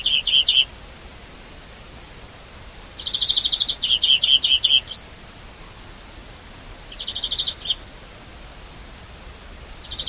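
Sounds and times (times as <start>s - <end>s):
European greenfinch Chloris chloris chirps and buzzing trill: 0.0s - 0.7s, 3.0s - 5.1s, 6.9s - 7.8s, 9.8s - 10.0s.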